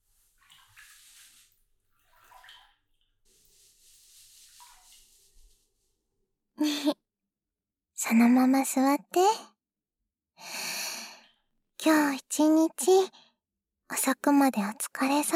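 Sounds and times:
water poured over someone's back during washing: 0.0 - 5.9
speech: 8.1 - 9.5, 11.8 - 13.2, 13.9 - 15.3.

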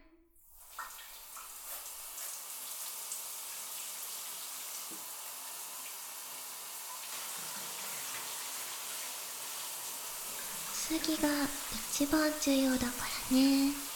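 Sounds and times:
running water rinsing shampoo out of hair: 0.5 - 13.9
speech: 10.9 - 13.8.

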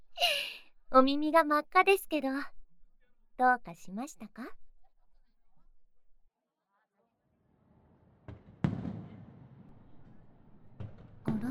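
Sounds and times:
speech: 1.0 - 2.6, 3.4 - 4.6
fireworks bursts from a fireworks display: 8.3 - 10.2.

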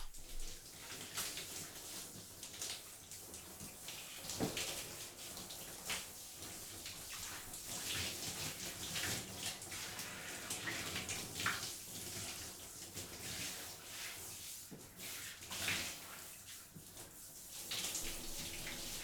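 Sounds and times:
warm water running from a shower: 0.0 - 19.0.

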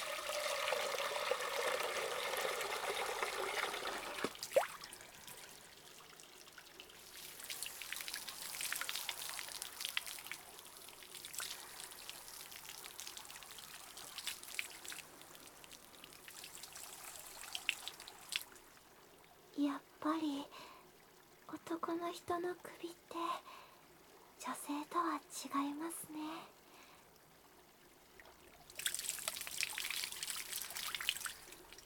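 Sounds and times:
water dripping: 0.0 - 19.4, 28.1 - 31.8
water trickling and splashing while a man's neck and back are washed: 0.0 - 22.8, 26.6 - 31.8
speech: 21.9 - 23.6, 24.4 - 26.6.

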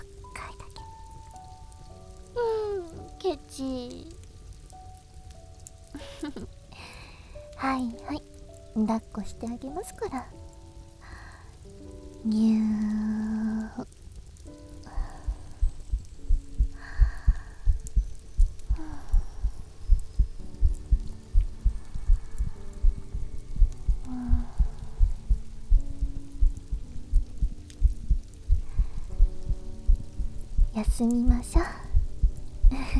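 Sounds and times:
speech: 3.3 - 4.2, 6.2 - 6.6, 7.6 - 10.5, 12.2 - 13.1, 31.0 - 31.8
heartbeat heard against a person's chest: 15.2 - 32.9.

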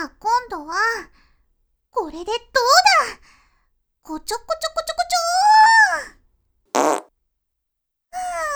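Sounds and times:
speech: 0.0 - 1.2, 2.0 - 3.4, 4.0 - 6.2
farts: 6.8 - 7.1.

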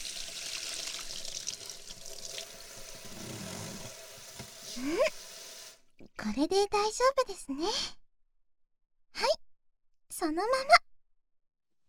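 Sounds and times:
warm water running to rinse: 0.0 - 6.0
speech: 4.8 - 5.2, 6.2 - 8.0, 10.2 - 10.8.

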